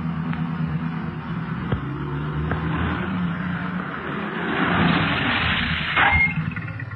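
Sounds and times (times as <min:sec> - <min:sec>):
police car engine rumbling while pulling up: 0:00.0 - 0:06.9.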